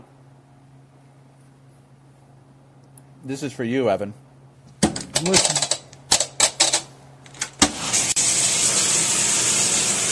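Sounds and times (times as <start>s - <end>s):
speech: 3.2s - 4.2s, 5.2s - 5.6s
washing machine running: 7.6s - 10.1s.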